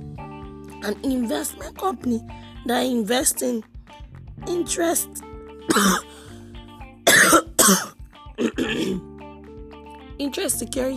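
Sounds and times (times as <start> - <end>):
speech: 0.8 - 3.7, 4.4 - 6.2, 7.7 - 8.9, 10.2 - 10.9
harsh coughing: 5.7 - 6.2, 7.1 - 9.0.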